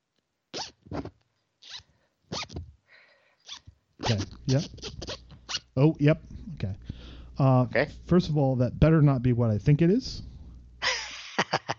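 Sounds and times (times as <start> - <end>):
zipper being zipped: 0.6 - 2.6, 3.5 - 5.6
speech: 4.1 - 4.9, 5.8 - 6.8, 7.4 - 10.3.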